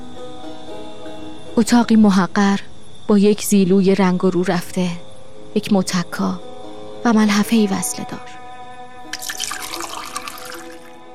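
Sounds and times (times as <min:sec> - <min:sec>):
speech: 0:01.6 - 0:08.4
water poured into a drinking glass: 0:09.1 - 0:11.0.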